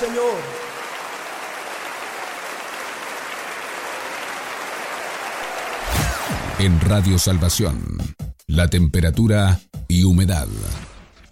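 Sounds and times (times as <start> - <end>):
large crowd clapping hands in worship: 0.0 - 7.8
speech: 6.6 - 10.9.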